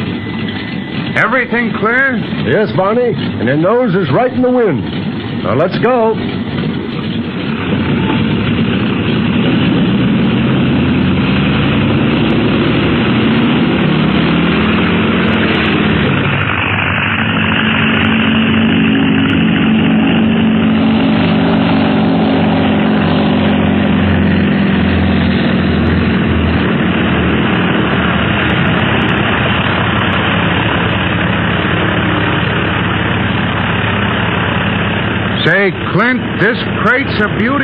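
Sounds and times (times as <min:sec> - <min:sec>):
propeller plane engine roaring during takeoff: 0:00.0 - 0:37.6
speech: 0:01.2 - 0:06.5, 0:36.0 - 0:37.6.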